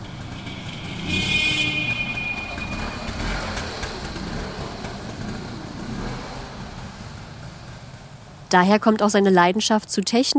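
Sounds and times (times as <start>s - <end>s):
thin high whine: 0.0s - 5.8s
small motor scooter engine running: 0.0s - 8.1s
speech: 8.5s - 10.3s.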